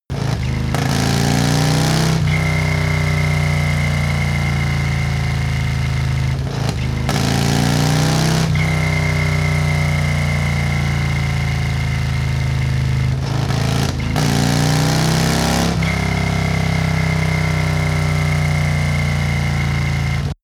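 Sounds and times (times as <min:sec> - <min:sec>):
Harley motorcycle accelerating: 0:00.0 - 0:20.4.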